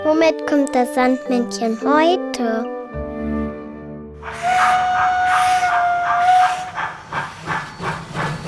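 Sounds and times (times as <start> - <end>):
speech: 0.2 - 2.7
steam locomotive whistle: 4.3 - 7.9
steam hissing: 4.3 - 8.4.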